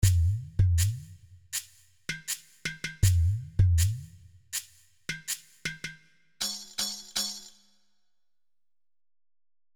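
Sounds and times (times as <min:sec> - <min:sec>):
ethnic percussion kit: 0:00.0 - 0:07.6.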